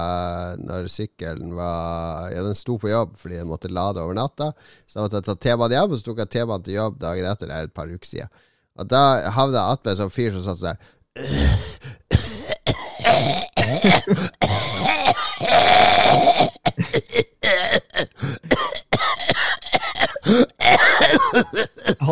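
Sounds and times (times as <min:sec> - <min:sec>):
speech: 0:00.0 - 0:12.0, 0:13.1 - 0:14.6, 0:20.3 - 0:22.0
person imitating wet phlegmy cough of a masked man on a metro train: 0:11.2 - 0:22.0
throat clearing: 0:12.1 - 0:15.4, 0:16.0 - 0:22.0.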